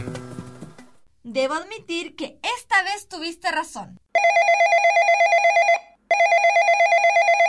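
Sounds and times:
speech: 1.4 - 5.1
telephone ringing with an electronic trilling tone: 4.2 - 7.4.

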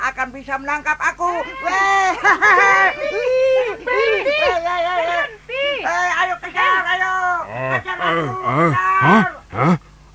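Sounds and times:
speech: 0.4 - 9.8
laughter: 1.3 - 5.8
water buffalo lowing: 7.5 - 10.1.

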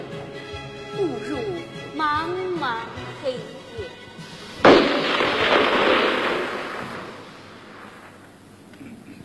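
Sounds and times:
speech: 1.0 - 4.0
burst of gunfire in a staged scene: 4.6 - 8.3.

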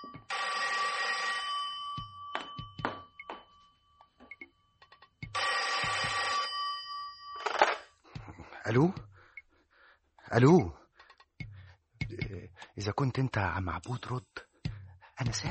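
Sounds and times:
telephone bell ringing: 0.0 - 8.0
speech: 8.7 - 9.1, 10.3 - 10.8, 12.8 - 14.4, 15.2 - 15.4.

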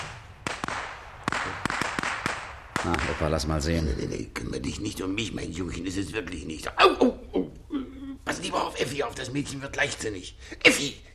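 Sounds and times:
gunshots fired from a gun in a German radio drama: 0.0 - 3.8
steady hiss: 0.0 - 11.1
speech: 2.8 - 7.2, 8.5 - 11.1.

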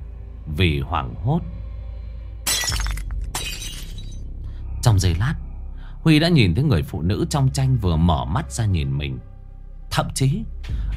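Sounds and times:
speech: 0.6 - 1.6, 4.8 - 9.3, 9.9 - 10.9
bowl of noodles falling and shattering on the floor: 2.5 - 4.2
broken bowl pieces breaking and scattering: 2.5 - 4.2.

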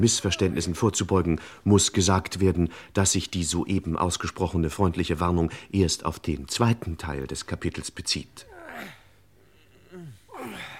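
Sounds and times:
speech: 0.0 - 9.0
men's voiced groaning exhalations while working hard: 8.5 - 10.7
men breathing heavily while working hard: 10.2 - 10.7.

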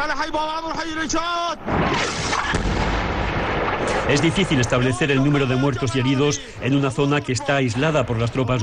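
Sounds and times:
speech: 0.0 - 2.8, 3.8 - 8.6
artillery shelling of a Syrian city's Sunni district in saturation bombardment: 1.6 - 5.1.

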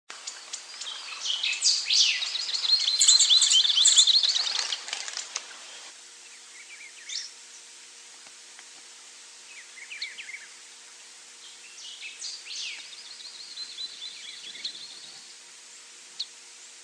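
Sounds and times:
scimitar-billed woodcreeper Drymornis bridgesii chattering call: 0.1 - 5.3, 9.5 - 10.6, 11.4 - 15.4
faint bird chirps: 0.2 - 4.9, 6.2 - 7.7, 9.5 - 10.6, 11.4 - 15.4.

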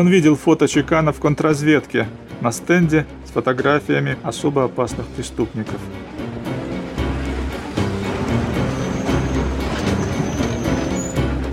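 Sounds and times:
speech: 0.0 - 6.6
tram rolling along rails: 4.9 - 11.5
tram wheels clacking: 6.4 - 11.5
faint high squeal: 8.6 - 11.3.

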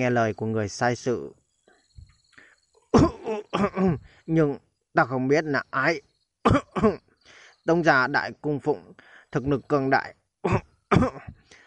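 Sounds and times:
speech: 0.0 - 1.4, 3.0 - 11.4
faint breathing: 1.8 - 2.8, 4.0 - 4.3, 7.2 - 7.7, 8.9 - 9.4, 11.4 - 11.6
old man coughing up blood: 3.0 - 4.1, 6.5 - 7.0, 10.5 - 11.4.

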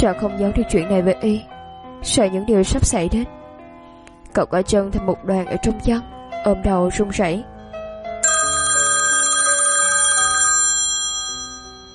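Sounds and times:
speech: 0.0 - 3.4, 4.4 - 7.5
electronic melodic ringtone from a mobile phone: 8.2 - 11.9.

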